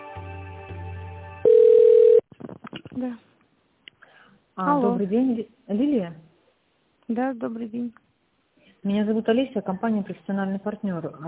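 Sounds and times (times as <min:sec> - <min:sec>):
telephone line tone beep during call transfer: 0:01.5 - 0:02.2
speech: 0:03.0 - 0:03.3, 0:04.6 - 0:06.2, 0:07.1 - 0:08.0, 0:08.8 - 0:11.2.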